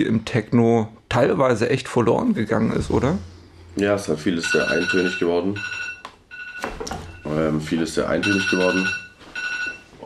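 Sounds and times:
speech: 0:00.0 - 0:05.9, 0:07.3 - 0:09.0
telephone ringing with a high electronic trill: 0:04.3 - 0:10.0.

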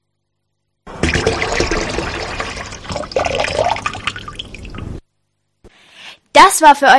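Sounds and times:
tap running water: 0:00.9 - 0:05.0
speech: 0:06.4 - 0:06.9.

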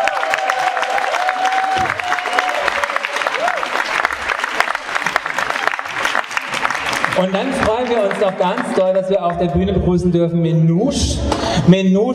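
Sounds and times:
audience applause: 0:00.0 - 0:09.4
speech: 0:07.2 - 0:12.1.

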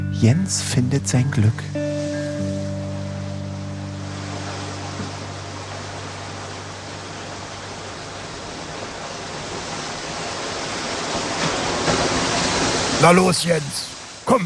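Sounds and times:
speech: 0:00.2 - 0:01.9, 0:13.1 - 0:14.4
low droning hum: 0:01.7 - 0:10.5
water pouring into a boat: 0:04.0 - 0:14.4.

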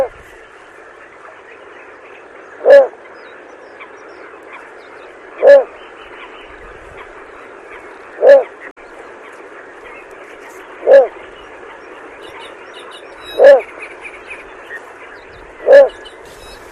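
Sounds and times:
little bittern calling at night from swampy reed-choked water: 0:00.0 - 0:00.2, 0:02.6 - 0:03.0, 0:05.4 - 0:05.8, 0:08.2 - 0:08.6, 0:10.8 - 0:11.2, 0:12.4 - 0:13.8, 0:15.6 - 0:16.1.

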